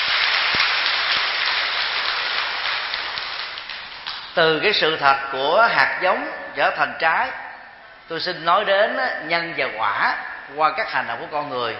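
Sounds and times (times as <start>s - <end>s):
large audience applause: 0.0s - 4.3s
speech: 4.4s - 7.4s, 8.1s - 11.7s.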